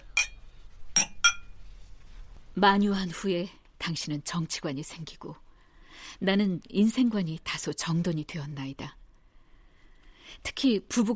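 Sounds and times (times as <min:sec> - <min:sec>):
glasses clinking in a toast: 0:00.0 - 0:00.4, 0:01.0 - 0:01.5
speech: 0:02.6 - 0:05.4, 0:06.0 - 0:09.0, 0:10.3 - 0:11.1.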